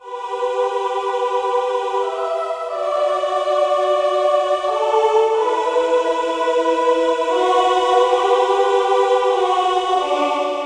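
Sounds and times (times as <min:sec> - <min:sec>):
choir singing: 0:00.0 - 0:10.6.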